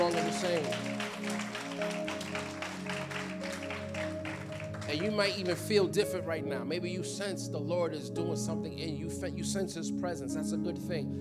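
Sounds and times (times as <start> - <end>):
audience applause after a prayer: 0.0 - 5.8
sustained keyboard chords: 0.0 - 11.1
speech: 0.1 - 2.0, 4.9 - 11.1.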